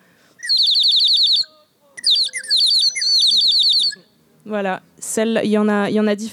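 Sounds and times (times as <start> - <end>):
water whistle warbling in bubbling trills: 0.4 - 4.1
speech: 4.4 - 6.3.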